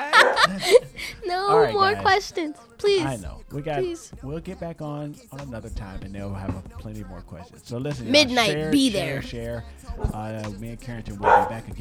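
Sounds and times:
protective dog barking while guarding the home: 0:00.0 - 0:00.6, 0:01.4 - 0:02.2, 0:11.2 - 0:11.7
laughter: 0:00.0 - 0:02.4, 0:07.9 - 0:09.3
speech: 0:00.5 - 0:11.7.

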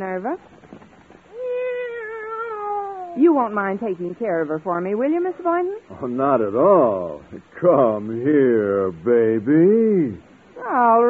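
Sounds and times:
speech: 0:00.0 - 0:00.6, 0:03.2 - 0:11.0
cat meowing: 0:01.3 - 0:03.4.

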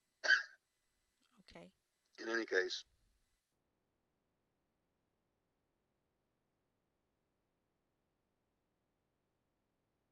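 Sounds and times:
single sharp cough: 0:00.2 - 0:00.6
soft throaty throat clearing: 0:00.2 - 0:00.6
speech: 0:01.5 - 0:02.9.

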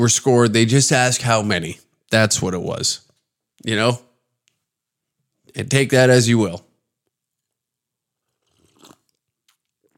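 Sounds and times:
speech: 0:00.0 - 0:04.1, 0:05.5 - 0:06.7
coffee sip slurp: 0:08.2 - 0:09.9.

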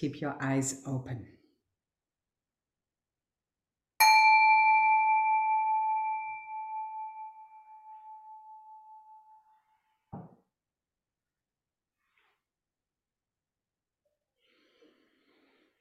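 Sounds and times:
speech: 0:00.0 - 0:01.4
meditation bell struck: 0:04.0 - 0:09.5.

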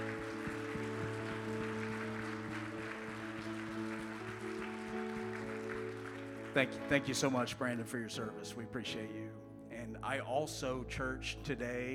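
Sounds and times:
audience applauding: 0:00.0 - 0:07.8
speech: 0:06.6 - 0:11.9.

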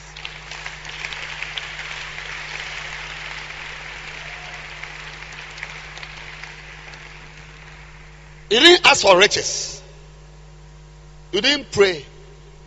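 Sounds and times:
crowd applauding: 0:00.0 - 0:08.3
faint low hum: 0:00.0 - 0:12.6
speech: 0:08.5 - 0:09.7, 0:11.3 - 0:12.1.

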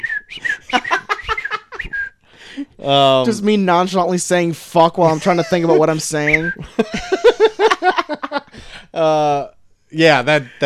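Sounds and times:
person whistling imitating birdsong: 0:00.0 - 0:02.2
laughter: 0:00.5 - 0:01.8, 0:05.0 - 0:08.6
speech: 0:02.8 - 0:07.1, 0:09.0 - 0:10.6.

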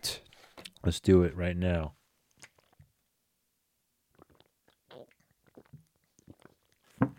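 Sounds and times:
speech: 0:00.8 - 0:02.0
person drinking water, gulping and swallowing: 0:02.4 - 0:03.0, 0:04.1 - 0:07.1.

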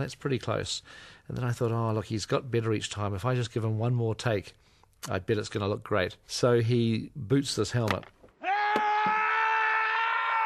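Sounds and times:
speech: 0:00.0 - 0:09.2
man screaming in grief: 0:08.4 - 0:10.4.

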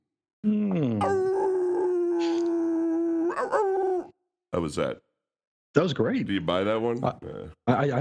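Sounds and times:
single loud wolf howl: 0:01.0 - 0:04.2
speech: 0:04.6 - 0:05.1, 0:05.8 - 0:07.9.

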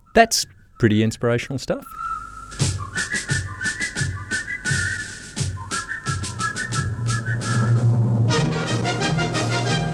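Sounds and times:
speech: 0:00.2 - 0:02.1
man whistling a bright marching melody in a field: 0:01.8 - 0:08.0
drum beats: 0:02.5 - 0:09.9
orchestral backing music from an advertisement: 0:07.1 - 0:09.9.

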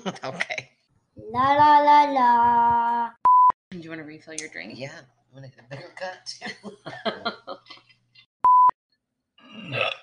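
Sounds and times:
speech: 0:00.0 - 0:00.7, 0:01.3 - 0:03.2, 0:03.8 - 0:07.8
laughter: 0:06.4 - 0:07.9
long gurgling burp: 0:09.4 - 0:10.0
rough raspy throat sound: 0:09.4 - 0:10.0.

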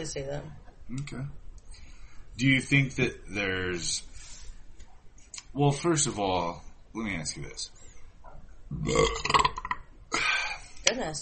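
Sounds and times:
speech: 0:00.0 - 0:01.4, 0:02.4 - 0:04.2, 0:05.5 - 0:07.8, 0:08.7 - 0:09.5, 0:10.9 - 0:11.2
belch: 0:08.7 - 0:10.4.

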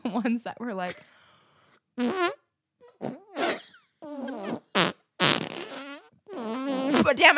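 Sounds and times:
speech: 0:00.1 - 0:01.1, 0:02.0 - 0:02.4, 0:07.1 - 0:07.3
person blowing fart noises against their forearm: 0:02.0 - 0:07.3.

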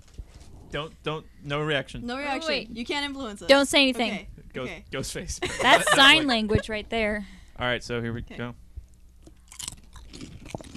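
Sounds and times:
speech: 0:00.7 - 0:08.6
laughter: 0:05.1 - 0:06.8
chip being bitten and chewed: 0:09.2 - 0:10.7.

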